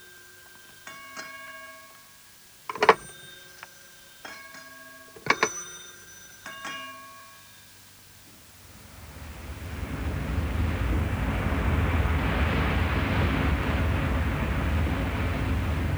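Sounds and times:
tanker engine at full power running full astern: 0:08.3 - 0:15.9
tanker propellers churning the water: 0:08.4 - 0:15.9.

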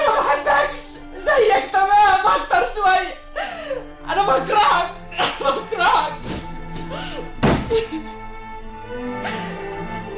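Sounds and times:
steady tonal background: 0:00.0 - 0:10.1
door shutting thunk: 0:07.4 - 0:07.8.

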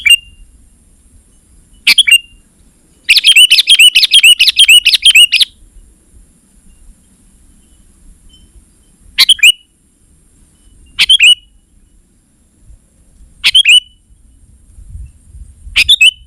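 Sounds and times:
sooty-headed bulbul song: 0:01.3 - 0:05.7, 0:07.6 - 0:09.8, 0:10.6 - 0:12.0, 0:13.4 - 0:14.4, 0:15.8 - 0:16.2.

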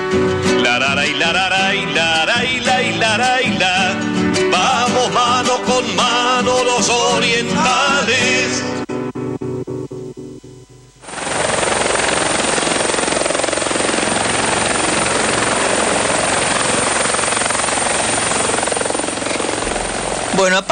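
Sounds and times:
speech: 0:00.1 - 0:08.8
helicopter sound effect used as a radio show jingle: 0:11.0 - 0:20.7.

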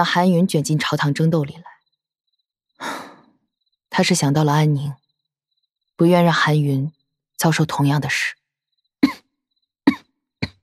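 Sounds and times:
speech: 0:00.0 - 0:01.7, 0:03.9 - 0:05.0, 0:06.0 - 0:08.4
person coughing: 0:09.0 - 0:09.3, 0:09.9 - 0:10.6.

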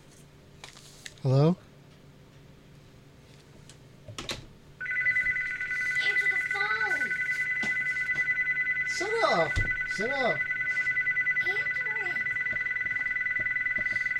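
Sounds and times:
speech: 0:01.2 - 0:01.6
electronic telephone ringing: 0:04.8 - 0:14.1.

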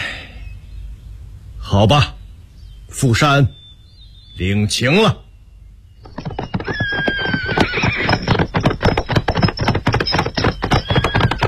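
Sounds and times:
speech: 0:01.7 - 0:02.2, 0:02.9 - 0:03.6, 0:04.4 - 0:05.2
galloping hoofbeats as a rider goes off at speed: 0:06.0 - 0:11.4
horse whinnying: 0:06.1 - 0:11.4.

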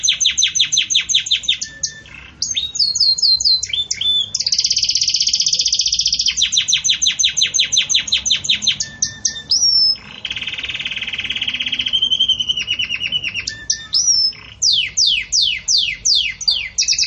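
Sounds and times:
Belgian canary song with chirps trills and whistles: 0:00.0 - 0:17.0.

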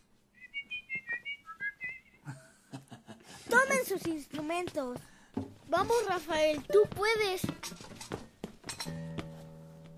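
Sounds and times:
two people whistling a tune in two parts: 0:00.4 - 0:02.2
speech: 0:03.5 - 0:05.1, 0:05.7 - 0:07.7.

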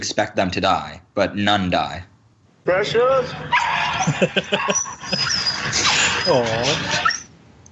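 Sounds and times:
speech: 0:00.0 - 0:07.2
steady hiss: 0:00.0 - 0:07.7
laughter: 0:02.8 - 0:07.2
dog whimpering with high-pitched whines and yips: 0:03.5 - 0:07.3.

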